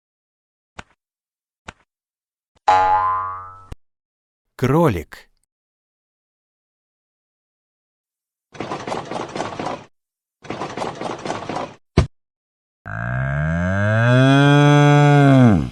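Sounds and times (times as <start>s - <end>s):
speech: 2.7s - 3.1s, 4.6s - 5.3s
cow mooing: 12.9s - 15.7s.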